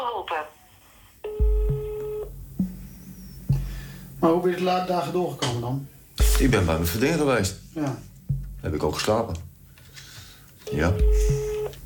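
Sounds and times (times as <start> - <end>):
telephone ringing tone on a call to a family doctor: 1.2 - 2.3, 10.6 - 11.8
dull low knocks and thumps: 1.4 - 8.9, 11.0 - 11.8
speech: 4.2 - 9.5, 10.7 - 11.3.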